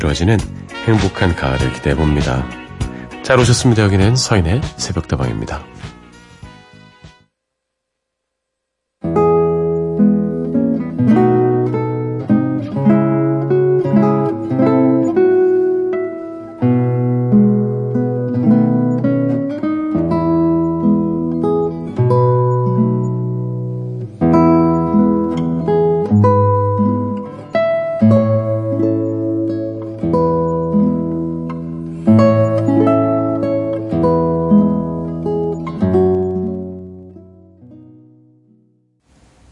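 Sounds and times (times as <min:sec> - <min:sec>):
speech: 0:00.0 - 0:02.6, 0:03.2 - 0:05.9
instrumental guitar piece with plucked notes: 0:00.0 - 0:07.3, 0:09.0 - 0:39.0
guitar strum: 0:09.0 - 0:38.4.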